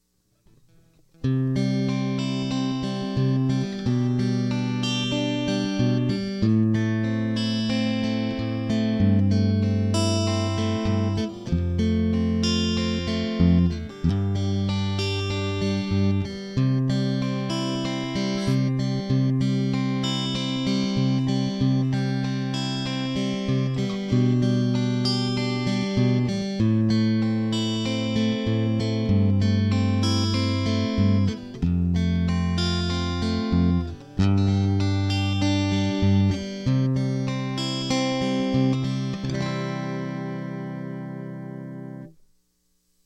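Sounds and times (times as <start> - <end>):
guitar chords: 0.0 - 42.2.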